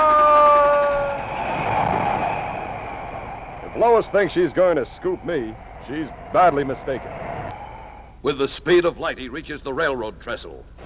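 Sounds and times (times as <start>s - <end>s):
train horn: 0.0s - 1.3s
train passing with rumbling rolling noise: 0.0s - 9.0s
speech: 3.8s - 7.3s, 8.2s - 10.8s.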